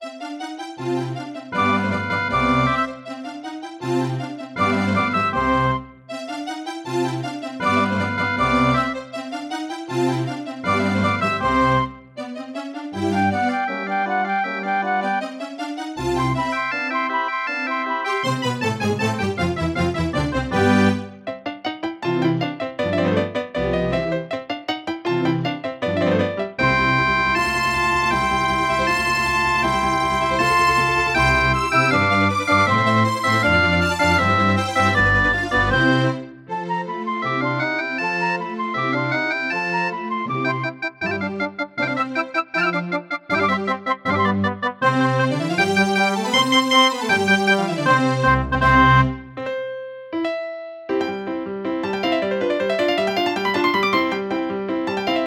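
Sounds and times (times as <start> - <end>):
classical piano concerto excerpt on Casio electronic keyboard: 0.0 - 55.2.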